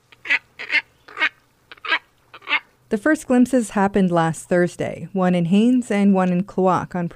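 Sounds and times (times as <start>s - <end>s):
heron-sized bird with long down-curved bill giving harsh nasal honking calls: 0.0s - 2.8s
speech: 2.9s - 7.1s.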